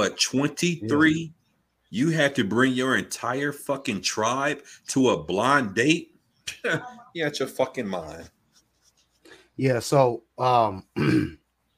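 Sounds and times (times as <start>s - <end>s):
speech: 0.0s - 8.4s, 9.6s - 11.4s
throat clearing in harsh voiced rasps: 11.0s - 11.4s.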